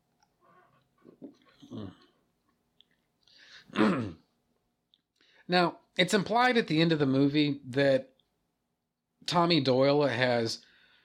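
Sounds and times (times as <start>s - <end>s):
person sipping a Coke: 0.7s - 2.2s
swallowing: 1.0s - 2.2s
speech: 5.5s - 8.1s, 9.3s - 10.7s.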